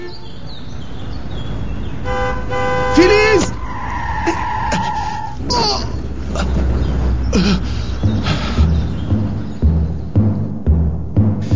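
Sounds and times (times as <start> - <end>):
car horn honking before traffic accident: 0.0 - 0.4, 2.0 - 5.1
dense rumble of street traffic: 0.0 - 11.5.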